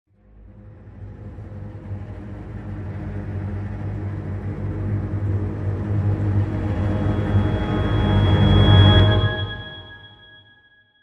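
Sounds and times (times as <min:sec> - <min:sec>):
dramatic music sting without percussion: 0:04.4 - 0:10.4.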